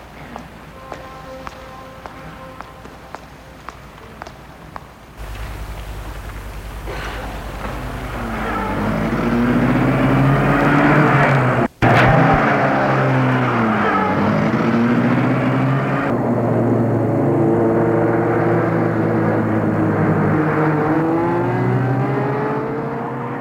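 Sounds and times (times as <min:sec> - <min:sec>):
car engine revving and accelerating: 0:05.2 - 0:23.3.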